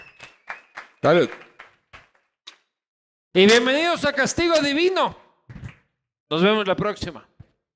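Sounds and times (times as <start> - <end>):
sharp hand claps: 0.0 - 2.6
speech: 1.0 - 1.4, 3.4 - 5.2, 6.3 - 7.3.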